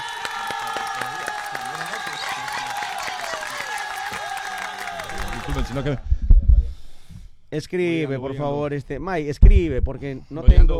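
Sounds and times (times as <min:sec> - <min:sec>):
shouts and whoops: 0:00.0 - 0:06.0
crowd applauding and cheering: 0:00.0 - 0:06.1
speech: 0:05.5 - 0:06.1, 0:07.5 - 0:10.7.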